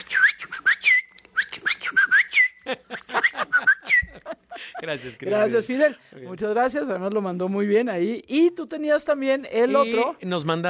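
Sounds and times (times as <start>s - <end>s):
person whistling an imitated call: 0.0s - 4.2s
laughter: 2.6s - 5.4s
speech: 4.9s - 10.6s.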